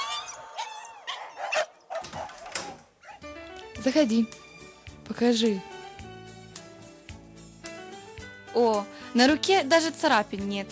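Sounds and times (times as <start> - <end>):
dog whimpering and yelping: 0.0 - 2.4, 3.0 - 3.4
dog barking: 0.0 - 3.4
speech: 3.8 - 4.4, 5.1 - 5.7, 8.6 - 10.7.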